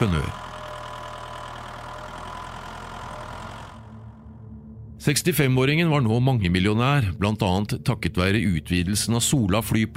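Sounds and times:
speech: 0:00.0 - 0:00.4, 0:05.0 - 0:09.9
tractor engine idling: 0:00.0 - 0:04.5.

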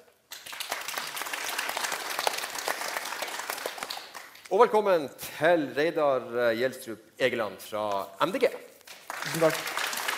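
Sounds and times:
audience applause: 0:00.3 - 0:04.5, 0:09.0 - 0:10.1
speech: 0:04.5 - 0:09.7.

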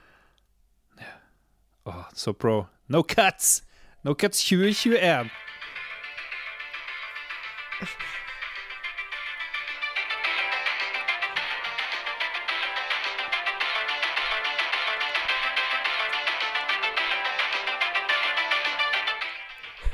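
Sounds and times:
speech: 0:01.9 - 0:05.4
muffled song playing like a worn cassette through a small speaker: 0:04.7 - 0:19.9.

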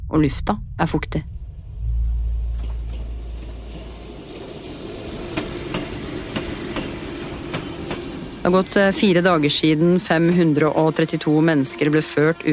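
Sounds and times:
train of cattle wagons rumbling into Birkenau-Auschwitz platform in Poland: 0:00.0 - 0:12.5
speech: 0:00.1 - 0:01.3, 0:08.4 - 0:12.5
cattle wagon wheels clacking over rail joints: 0:02.6 - 0:10.9.

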